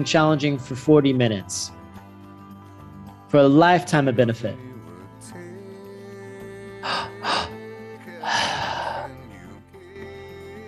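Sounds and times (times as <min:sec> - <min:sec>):
speech: 0:00.0 - 0:01.8, 0:03.3 - 0:05.4
deep breathing during a breathing exercise: 0:06.8 - 0:09.3.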